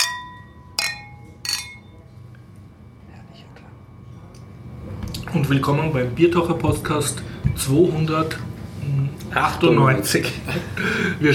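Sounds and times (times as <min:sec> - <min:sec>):
glasses clinking together in a toast: 0:00.0 - 0:02.0
speech: 0:05.4 - 0:11.3.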